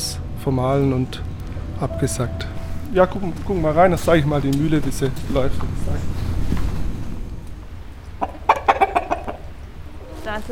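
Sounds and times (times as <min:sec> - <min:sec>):
steady low rumble: 0:00.0 - 0:10.4
speech: 0:00.4 - 0:06.2
flock of chickens clucking: 0:08.1 - 0:10.2.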